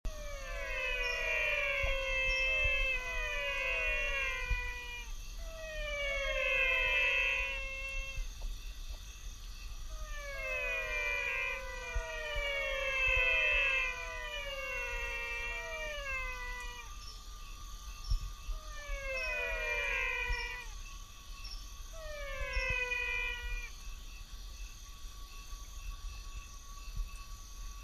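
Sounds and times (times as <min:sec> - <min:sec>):
Physalaemus albonotatus: 0:00.1 - 0:08.5, 0:09.8 - 0:17.3, 0:17.9 - 0:24.0.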